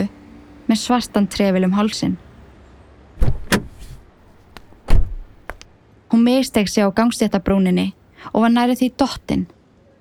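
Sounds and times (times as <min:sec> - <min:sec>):
speech: 0:00.7 - 0:02.2, 0:06.3 - 0:09.6
car door latch clicks: 0:03.2 - 0:04.0, 0:04.8 - 0:05.3
car door opening and closing: 0:03.2 - 0:05.6.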